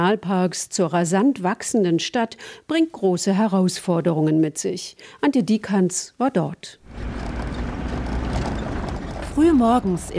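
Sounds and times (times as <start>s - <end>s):
speech: 0.0s - 7.2s, 9.4s - 10.1s
car engine drone on a dirt track in Nairobi National Park: 6.8s - 10.1s.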